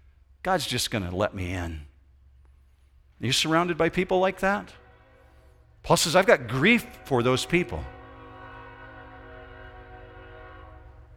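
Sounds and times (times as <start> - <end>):
speech: 0.4 - 1.9, 3.2 - 4.8, 5.8 - 8.0
train horn blaring: 3.4 - 11.1.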